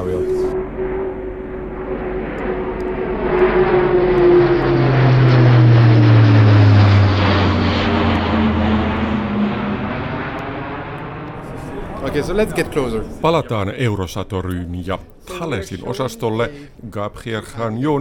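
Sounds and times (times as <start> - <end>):
A400M turboprop cargo aircraft engines passing overhead: 0.0 - 13.7
speech: 12.2 - 17.9.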